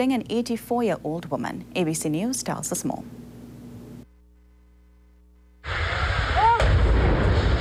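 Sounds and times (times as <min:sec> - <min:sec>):
speech: 0:00.0 - 0:03.2
explosion destroying houses with rumbling roar: 0:05.6 - 0:07.5
sharp blast: 0:05.6 - 0:07.5.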